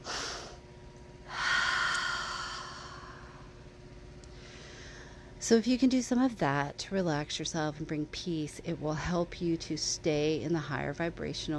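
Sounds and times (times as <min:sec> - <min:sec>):
long airy sigh releasing anxious energy: 0:00.0 - 0:00.6, 0:01.2 - 0:03.6
sharp intake of breath in a calming breath pattern: 0:00.0 - 0:00.6, 0:01.3 - 0:03.5, 0:04.3 - 0:05.4
speech: 0:05.4 - 0:11.5.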